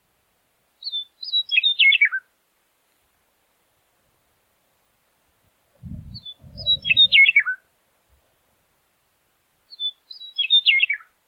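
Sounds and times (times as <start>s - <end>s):
western meadowlark singing: 0.8s - 2.2s, 5.9s - 7.6s, 9.7s - 11.1s.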